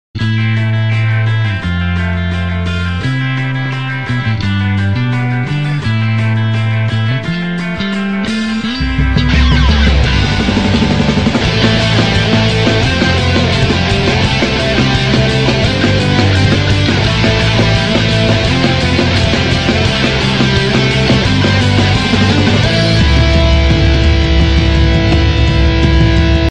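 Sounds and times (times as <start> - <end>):
rock music: 0.2 - 26.4.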